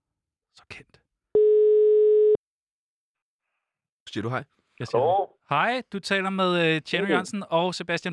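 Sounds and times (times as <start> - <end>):
speech: 0.6 - 1.0, 4.1 - 8.1
telephone ringing tone while placing a call: 1.4 - 2.4.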